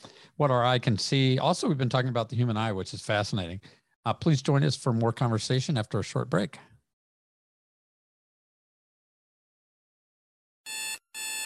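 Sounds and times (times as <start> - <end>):
speech: 0.4 - 6.7
alarm clock buzzing with harsh electronic tones: 10.7 - 11.4.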